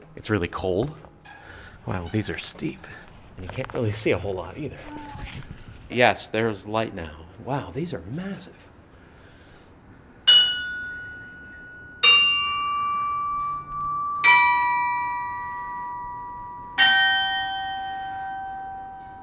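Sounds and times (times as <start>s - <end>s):
speech: 0.2s - 1.1s, 1.8s - 8.7s
large tower bells ringing: 10.3s - 19.2s.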